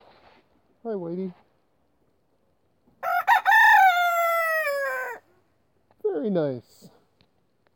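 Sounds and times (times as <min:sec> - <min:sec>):
rooster crowing: 0:03.0 - 0:05.3.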